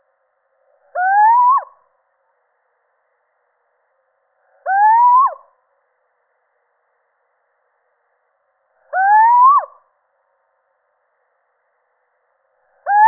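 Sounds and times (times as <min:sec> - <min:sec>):
male little owl giving a rising hoot: 0:00.9 - 0:01.8, 0:04.6 - 0:05.5, 0:08.9 - 0:09.8, 0:12.8 - 0:13.0.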